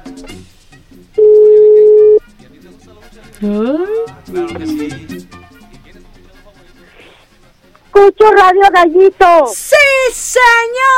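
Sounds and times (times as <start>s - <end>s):
telephone line tone as a call connects: 1.2s - 2.2s
speech: 8.2s - 10.9s.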